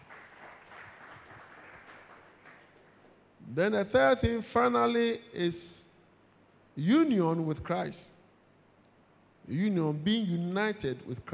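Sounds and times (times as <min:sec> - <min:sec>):
audience clapping hands: 0:00.0 - 0:03.2
speech: 0:03.5 - 0:05.8, 0:06.8 - 0:08.2, 0:09.5 - 0:11.3.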